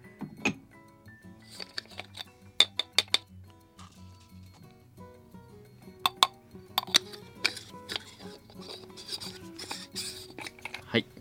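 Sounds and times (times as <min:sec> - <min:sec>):
soft steady tonal background: 0:00.0 - 0:11.1
glassy clinks and taps of coffee dripper set on glass server: 0:00.2 - 0:04.8, 0:05.6 - 0:11.0.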